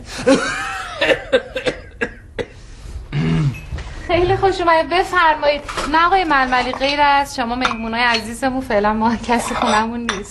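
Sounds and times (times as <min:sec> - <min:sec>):
speech: 0:00.2 - 0:01.2, 0:04.4 - 0:10.2
person with a persistent cough coughing: 0:00.2 - 0:03.7.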